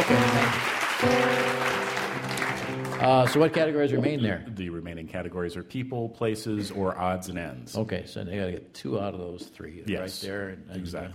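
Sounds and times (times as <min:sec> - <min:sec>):
studio audience applause on a quiz game show: 0:00.0 - 0:04.0
speech: 0:00.1 - 0:01.4, 0:03.0 - 0:11.1.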